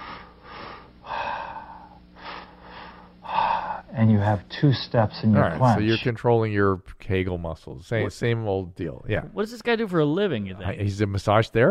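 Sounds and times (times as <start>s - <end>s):
person inhaling in a double-step breathing exercise: 0.0s - 3.9s
speech: 4.0s - 11.6s.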